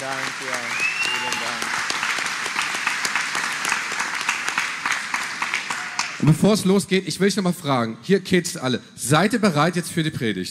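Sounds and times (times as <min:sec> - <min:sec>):
crowd applauding: 0:00.0 - 0:06.5
speech: 0:06.2 - 0:10.4.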